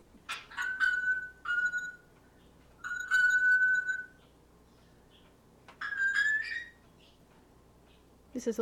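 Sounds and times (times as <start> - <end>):
African grey parrot making pinging bell sound: 0.3 - 2.1, 2.8 - 4.2, 5.8 - 6.8
speech: 8.4 - 8.6.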